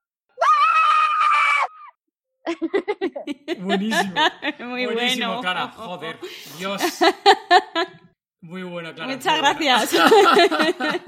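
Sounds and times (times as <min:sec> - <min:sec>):
woman screaming loudly: 0:00.4 - 0:02.0
laughter: 0:02.5 - 0:08.0, 0:09.7 - 0:11.0
speech: 0:02.5 - 0:11.0.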